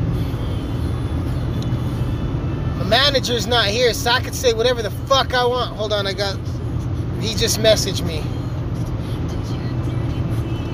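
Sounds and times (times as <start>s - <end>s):
car being driven, low engine and road rumble: 0.0s - 10.7s
speech: 2.9s - 6.6s, 7.2s - 8.4s.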